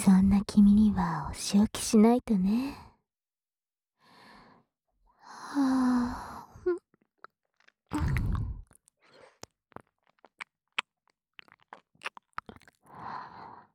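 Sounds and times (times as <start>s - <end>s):
speech: 0.0s - 2.9s, 5.5s - 6.3s
chewing candy in the mouth: 6.8s - 13.1s.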